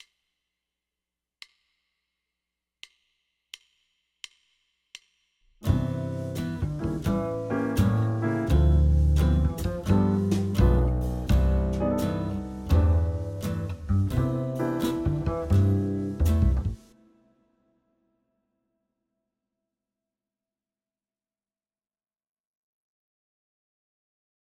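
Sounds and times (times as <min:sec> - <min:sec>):
jazz guitar playing a i vi ii v7 chord progression: 0:05.6 - 0:16.9.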